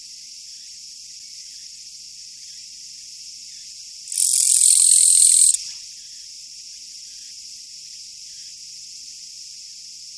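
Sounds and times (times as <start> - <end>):
Japanese katydid buzzing: 4.1 - 5.6.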